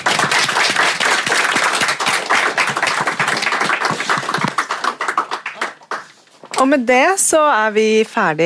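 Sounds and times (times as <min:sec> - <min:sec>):
crowd applauding: 0:00.0 - 0:06.2
speech: 0:06.6 - 0:08.4.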